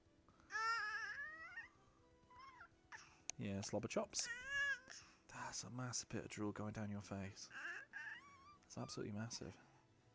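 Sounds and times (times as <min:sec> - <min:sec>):
six-month-old baby babbling into the microphone: 0:00.5 - 0:01.7, 0:02.4 - 0:03.1, 0:07.5 - 0:08.6
six-month-old baby cooing: 0:00.5 - 0:03.1, 0:04.2 - 0:05.0, 0:07.5 - 0:08.6
speech: 0:03.4 - 0:07.8, 0:08.7 - 0:09.7.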